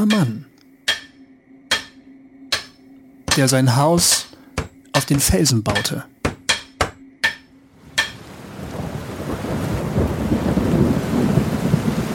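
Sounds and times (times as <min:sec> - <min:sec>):
speech: 0:00.0 - 0:00.5, 0:03.4 - 0:04.4, 0:05.0 - 0:06.2
heavy rain: 0:07.7 - 0:12.1
sharp cracks of thunder: 0:08.2 - 0:12.1.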